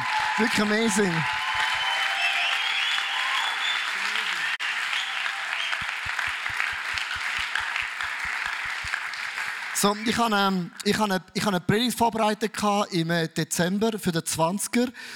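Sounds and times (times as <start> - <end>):
loud sustained applause from a large audience: 0.0 - 10.4
speech: 0.4 - 1.4, 9.8 - 15.1
steady rhythmic low thumping: 5.8 - 9.0.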